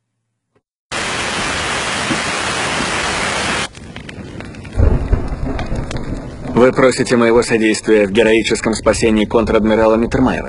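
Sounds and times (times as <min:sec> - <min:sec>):
steady dense rain falling outdoors: 0:00.9 - 0:09.0
low rumble of thunder: 0:01.0 - 0:10.4
speech: 0:06.6 - 0:10.4.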